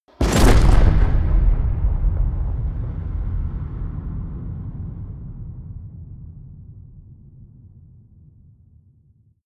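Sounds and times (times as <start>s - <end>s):
shotgun fire with huge reverb: 0.2s - 5.8s.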